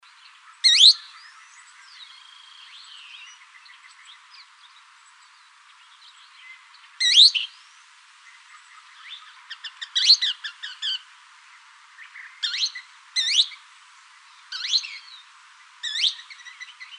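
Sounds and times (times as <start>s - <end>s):
thick-billed kingbird calls in Arizona: 0.6s - 1.5s, 7.0s - 7.6s, 8.3s - 11.1s, 12.0s - 13.6s, 14.5s - 16.9s.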